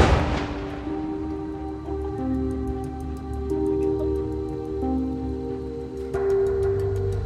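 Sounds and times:
explosion blast launching a car tire and wheel: 0.0 - 1.4
faint regular ticking: 1.0 - 7.2.

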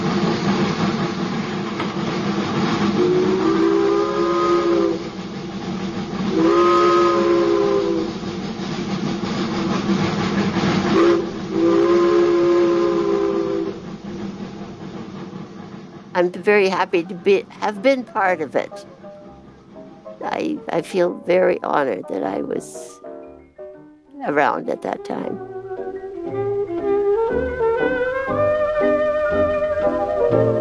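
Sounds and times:
running steam locomotive rumbling and chuffing: 0.0 - 23.5, 24.2 - 30.5
steam train whistle blasts: 2.0 - 15.7, 25.2 - 30.5
speech: 16.2 - 19.0, 20.4 - 23.0, 24.2 - 25.5.

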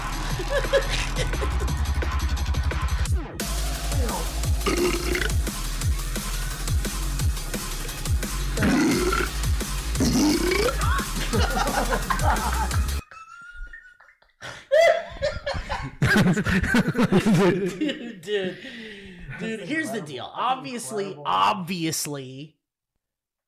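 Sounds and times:
people chuckling: 0.0 - 1.9, 10.4 - 20.2
dance beat: 0.0 - 13.0
speech: 0.5 - 1.3, 19.4 - 22.6
burping: 4.6 - 5.5, 8.6 - 10.9.

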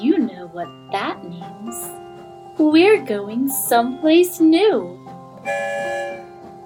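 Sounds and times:
speech: 0.4 - 6.3
train whistle blowing as the train leaves the station: 5.4 - 6.4.

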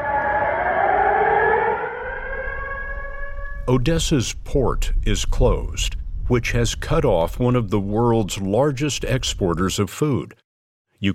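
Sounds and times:
air raid siren: 0.0 - 4.1
speech: 3.7 - 10.4.

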